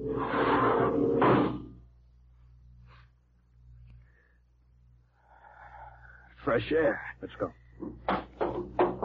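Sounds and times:
spaceship outer airlock door opening: 0:00.1 - 0:01.7
speech: 0:06.5 - 0:08.8.

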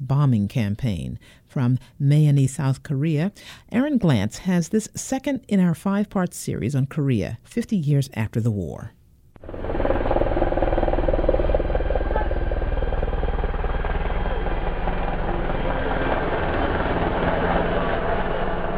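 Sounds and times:
speech: 0:00.1 - 0:09.0
Apache helicopter flying overhead: 0:09.4 - 0:18.7.

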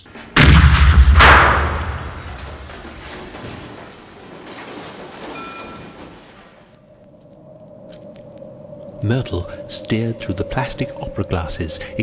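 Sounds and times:
gun blast: 0:00.4 - 0:03.6
speech: 0:09.1 - 0:12.0.

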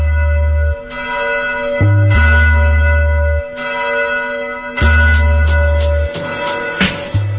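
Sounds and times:
loud resonant time-signal bell chiming: 0:00.0 - 0:07.3.

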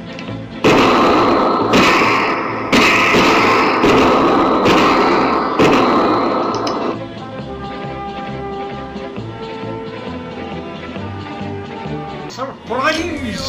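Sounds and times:
gunfire in a staged shootout: 0:00.6 - 0:07.0.

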